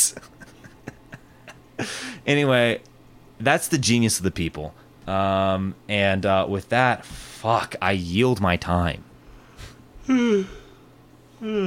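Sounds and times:
speech: 1.8s - 9.1s, 10.1s - 10.6s, 11.4s - 11.6s
person yawning: 10.1s - 10.8s, 11.4s - 11.6s.

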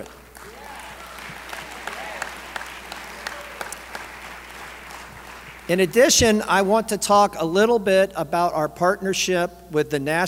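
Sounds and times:
speech: 0.0s - 0.2s, 5.7s - 10.2s
audience applause for scholarship winners at a conference: 0.0s - 5.8s.

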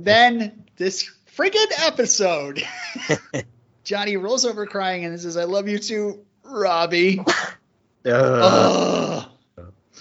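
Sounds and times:
speech: 0.0s - 9.3s
laughter: 2.6s - 3.5s
loud voiced sneeze with a strained throaty tone: 7.3s - 7.6s.

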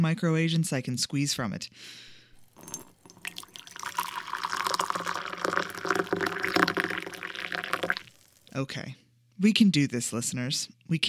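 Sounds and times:
speech: 0.0s - 2.8s, 8.6s - 11.0s
hot water pouring over an oolong tea bag into a cup: 2.3s - 8.6s.

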